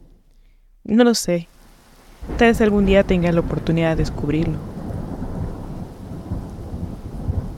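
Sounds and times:
steady rain hissing: 0.0s - 7.5s
speech: 0.9s - 1.6s, 2.4s - 4.7s
deep thunder rumbling: 1.5s - 7.5s.

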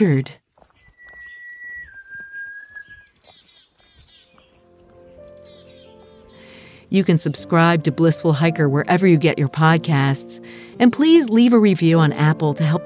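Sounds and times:
speech: 0.0s - 0.4s, 6.9s - 12.8s
birds chirping and twittering outdoors: 0.0s - 12.8s
person whistling a long held note outdoors: 0.9s - 3.0s.

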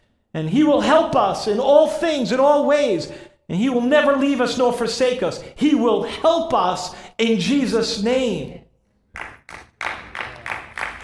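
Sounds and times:
speech: 0.4s - 8.6s
audience applause: 9.2s - 11.0s.

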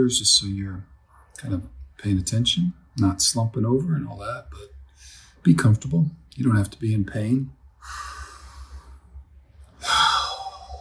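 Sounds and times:
speech: 0.0s - 8.1s
faint low steady hum: 0.0s - 10.7s
deep cleansing breath during a guided mindfulness meditation: 4.9s - 5.4s, 7.8s - 9.2s, 9.8s - 10.7s.

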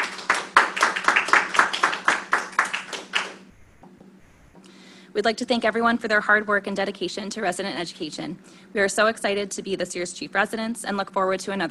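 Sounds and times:
audience applause for a residency program award recipient: 0.0s - 3.5s
speech: 5.2s - 11.6s.

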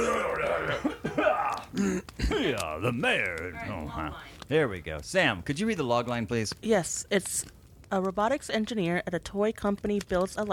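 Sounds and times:
low hum: 0.0s - 10.5s
coughs: 0.7s - 2.6s
speech: 1.8s - 10.5s.

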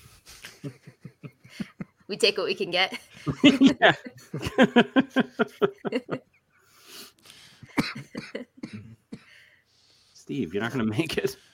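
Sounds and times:
laughter: 0.4s - 2.1s, 2.9s - 6.4s
speech: 0.6s - 0.9s, 2.1s - 6.3s, 10.3s - 11.4s
brief wheezy breath: 6.6s - 7.7s, 9.2s - 10.2s
harsh coughing fit: 7.7s - 9.4s.

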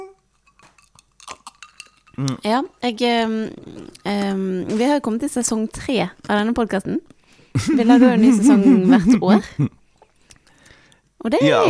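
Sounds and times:
drinking glasses clinking together in a toast: 0.4s - 2.3s
speech: 2.2s - 9.8s, 11.2s - 11.6s
laughter: 7.6s - 9.7s, 11.4s - 11.6s.

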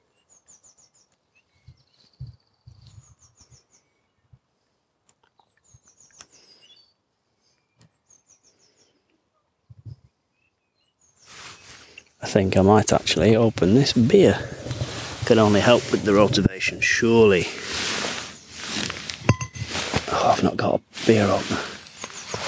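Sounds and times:
soft evening birdsong outdoors: 0.0s - 4.4s, 5.3s - 22.4s
rustles: 11.2s - 22.4s
speech: 12.3s - 14.6s, 15.3s - 17.7s, 20.7s - 21.6s.

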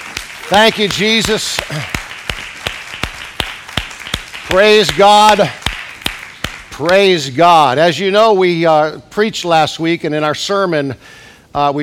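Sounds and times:
church congregation clapping hands in praise in unison: 0.0s - 7.4s
speech: 0.5s - 2.0s, 4.5s - 5.6s, 6.8s - 11.8s.

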